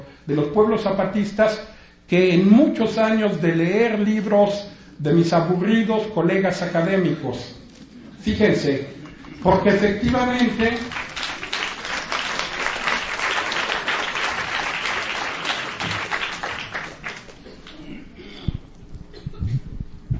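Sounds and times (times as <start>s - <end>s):
speech: 0.3s - 7.6s, 8.2s - 11.0s
crowd applauding a speaker at a gathering of Zapatista communities: 9.1s - 17.8s.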